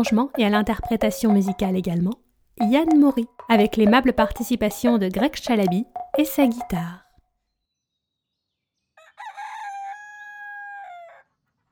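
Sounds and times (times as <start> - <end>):
speech: 0.0 - 7.0
rooster crowing in a farmyard: 9.0 - 11.3.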